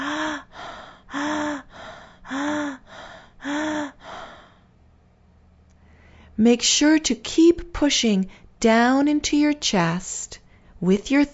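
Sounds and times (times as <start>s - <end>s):
rapid panting breaths in and out of the chest during a breathing exercise: 0.0s - 4.7s
speech: 6.4s - 11.3s.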